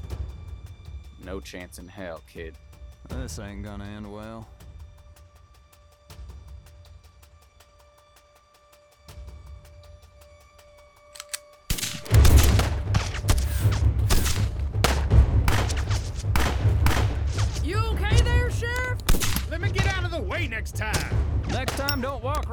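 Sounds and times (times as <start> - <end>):
speech: 1.2 - 4.6
gunfire in a shootout with a rifle among the guns: 11.2 - 20.2, 20.8 - 22.5.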